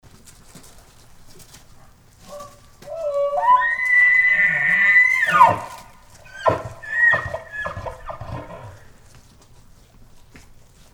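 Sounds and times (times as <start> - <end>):
elk bugling: 2.2 - 9.0.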